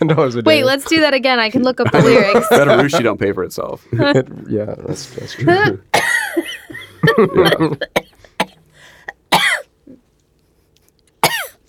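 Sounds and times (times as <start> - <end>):
speech: 0.0 - 8.2
laughter: 1.8 - 3.1, 6.4 - 8.0
person coughing: 6.0 - 6.4, 7.2 - 10.0, 11.2 - 11.6.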